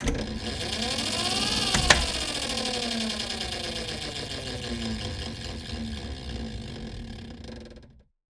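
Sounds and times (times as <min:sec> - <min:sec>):
ship transport access tube: 0:00.0 - 0:06.6.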